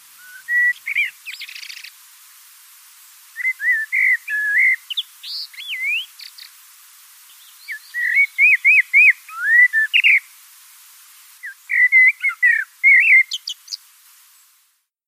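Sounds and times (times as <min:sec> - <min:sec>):
common blackbird song: 0:00.1 - 0:02.0, 0:03.4 - 0:06.6, 0:07.2 - 0:10.3, 0:11.4 - 0:13.8.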